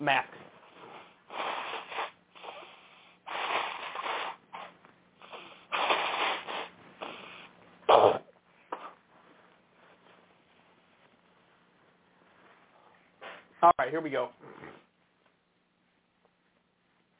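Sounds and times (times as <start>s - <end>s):
speech: 0.0s - 0.4s, 13.9s - 14.9s
person blowing nose: 0.6s - 9.0s.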